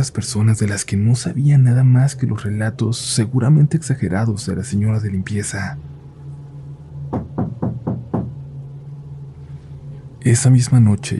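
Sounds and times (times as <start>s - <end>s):
speech: 0.0s - 6.0s, 10.2s - 11.1s
steady low hum: 0.0s - 11.1s
firm knocking on a door: 7.1s - 8.4s.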